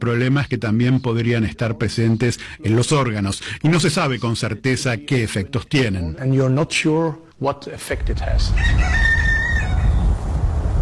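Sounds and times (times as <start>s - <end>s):
speech: 0.0s - 9.1s
rooster crowing in a garden: 8.5s - 10.3s
steady low outdoor rumble: 9.4s - 10.7s.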